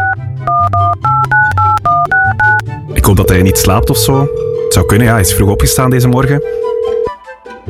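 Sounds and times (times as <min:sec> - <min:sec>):
telephone number being dialled on a keypad: 0:00.0 - 0:07.1
speech: 0:03.1 - 0:06.6.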